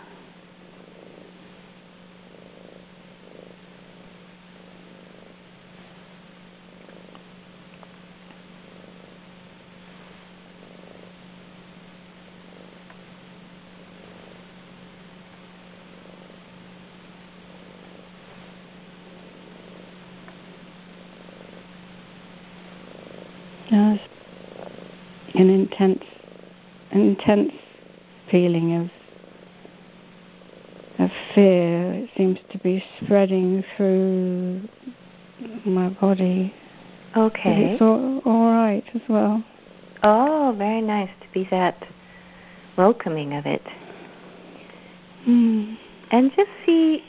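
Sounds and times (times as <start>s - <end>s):
cat purring while sitting on a person's knee: 0.0s - 47.0s
speech: 25.4s - 26.2s, 26.9s - 27.6s, 28.3s - 29.0s, 31.4s - 34.8s, 35.6s - 36.6s, 37.2s - 41.9s, 42.8s - 43.8s.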